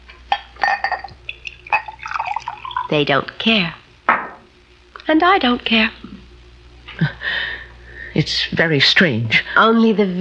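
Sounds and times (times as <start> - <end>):
wine pouring into a glass: 0.6 - 3.0
wine dripping: 0.9 - 3.0
speech: 2.9 - 3.8, 5.1 - 6.0, 8.2 - 10.1.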